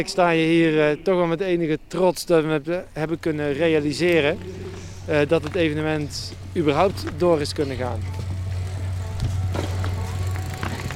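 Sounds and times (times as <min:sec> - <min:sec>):
speech: 0:00.0 - 0:08.3
cyclocross bicycles rolling over a small bridge at the Autotron grounds: 0:03.1 - 0:10.9.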